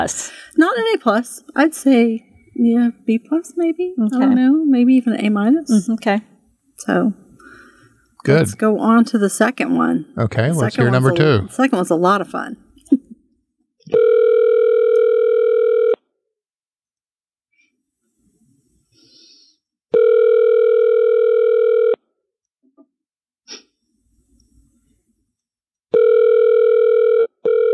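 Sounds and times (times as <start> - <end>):
speech: 0.0 - 7.2, 8.2 - 13.0
ringing tone of an outgoing telephone call: 13.9 - 16.0, 19.9 - 22.0, 25.9 - 27.7.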